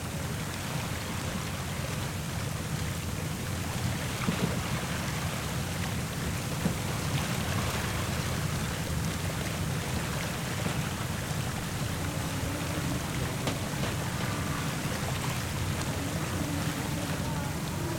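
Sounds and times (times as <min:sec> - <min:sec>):
sea and wind roaring aboard a schooner: 0:00.0 - 0:17.9
schooner hull creaking: 0:10.4 - 0:17.9
faint knocks aboard a schooner: 0:12.6 - 0:14.8.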